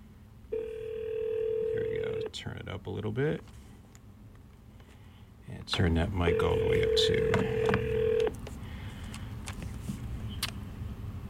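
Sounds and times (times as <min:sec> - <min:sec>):
faint low hum: 0:00.0 - 0:11.2
steady electronic telephone call tone: 0:00.5 - 0:02.3, 0:06.2 - 0:08.3
speech: 0:02.3 - 0:03.6, 0:05.6 - 0:08.0.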